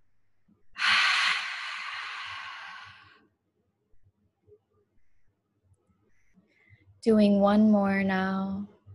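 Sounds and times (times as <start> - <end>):
deep breath exhaled through an open mouth: 0.8 - 3.2
speech: 7.0 - 8.7.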